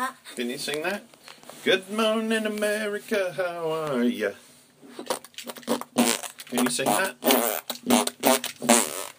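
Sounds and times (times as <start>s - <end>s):
speech: 0.3s - 5.1s, 6.5s - 8.0s
buzzy mouth-fart beatboxing bursts: 4.9s - 9.1s.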